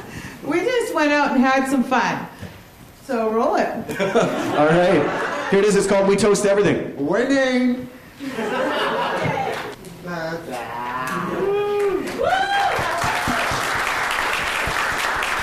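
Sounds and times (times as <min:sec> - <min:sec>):
speech: 0:01.0 - 0:02.3, 0:03.1 - 0:08.7
laughter: 0:03.9 - 0:05.8, 0:08.2 - 0:09.8
audience applauding: 0:09.1 - 0:09.8, 0:11.8 - 0:15.4
whoops and cheers: 0:10.8 - 0:13.8.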